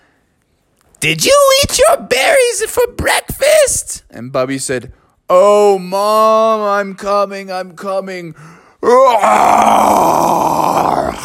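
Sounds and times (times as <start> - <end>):
speech: 1.0 - 11.0
person imitating a bear's roaring yawn: 8.8 - 11.2.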